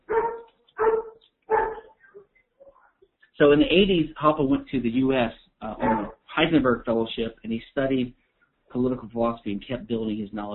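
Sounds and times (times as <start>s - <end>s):
poodles barking: 0.0s - 2.8s, 5.8s - 6.2s
faint poodle yips: 0.1s - 2.8s
speech: 3.4s - 10.5s.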